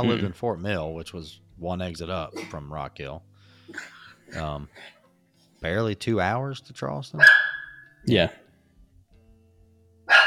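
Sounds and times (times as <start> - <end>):
speech: 0.0 - 5.0, 5.6 - 7.4, 8.0 - 8.4
dog barking at cars outside: 7.2 - 7.9, 10.1 - 10.2.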